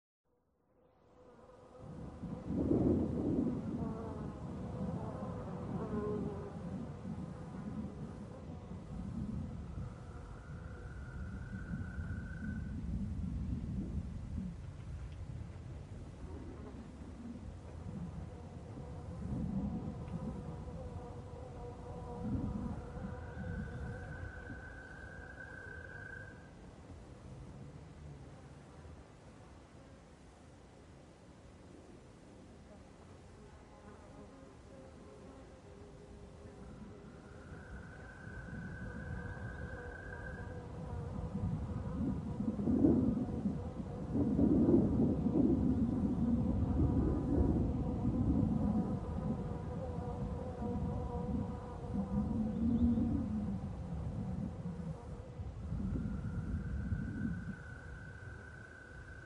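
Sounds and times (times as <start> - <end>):
insects: 0.3 - 59.2
flies buzzing: 0.8 - 12.7, 16.1 - 26.6, 32.7 - 59.2
blustery canyon wind: 1.3 - 59.2
crickets chirping: 4.4 - 14.5, 16.5 - 28.1, 35.4 - 59.2.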